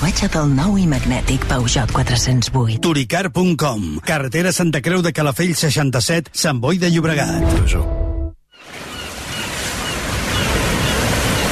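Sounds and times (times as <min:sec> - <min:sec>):
speech: 0:00.0 - 0:08.0
sea waves washing in with hiss of surf: 0:08.6 - 0:11.5.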